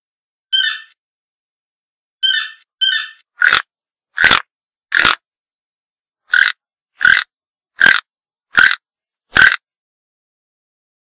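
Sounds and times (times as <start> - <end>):
toucan croaks: 2.2 - 5.2, 6.3 - 9.6.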